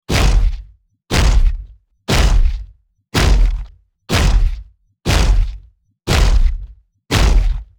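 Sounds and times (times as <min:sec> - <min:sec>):
robot footsteps: 0:00.1 - 0:07.7.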